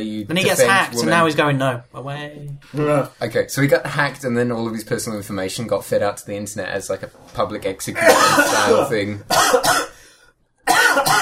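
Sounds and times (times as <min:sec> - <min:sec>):
speech: 0:00.0 - 0:09.9
person coughing harshly: 0:08.0 - 0:10.0, 0:10.7 - 0:11.2.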